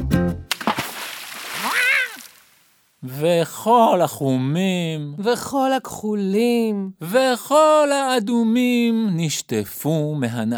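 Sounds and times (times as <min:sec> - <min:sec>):
foot plunging into a tub of water: 0:00.5 - 0:02.7
speech: 0:03.0 - 0:10.5.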